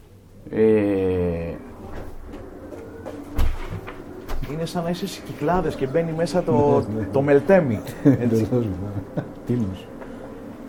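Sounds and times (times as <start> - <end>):
speech: 0.4 - 0.8, 4.6 - 9.9
door shutting with a soft thud: 3.3 - 4.5
laughter: 6.6 - 9.8.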